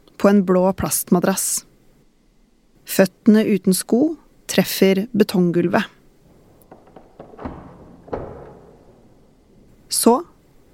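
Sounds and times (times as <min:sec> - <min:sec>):
speech: 0:00.2 - 0:01.7, 0:02.9 - 0:06.0, 0:10.1 - 0:10.3
police holding-cell door lock clicking and clunking: 0:06.0 - 0:09.9
low hollow rumble: 0:06.1 - 0:09.9
heavy cell door bolt thud: 0:06.3 - 0:09.8.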